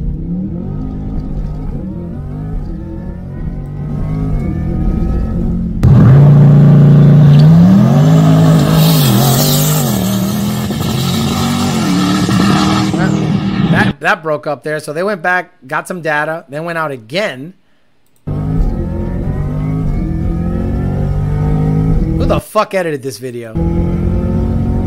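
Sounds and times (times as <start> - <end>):
Corvette E-Ray motor heard from inside the car: 0.0 - 14.0, 18.3 - 22.4, 23.6 - 24.8
speech: 14.0 - 17.6, 22.3 - 23.8.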